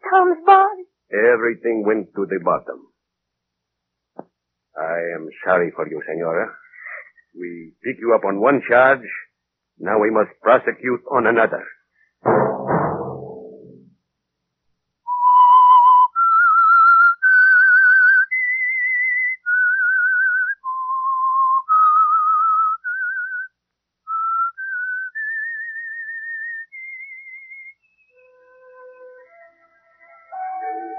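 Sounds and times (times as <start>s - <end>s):
speech: 0.2s - 2.9s, 4.8s - 6.6s, 7.4s - 12.4s
person whistling a slow haunting radio theme melody: 15.1s - 23.5s, 24.1s - 29.5s.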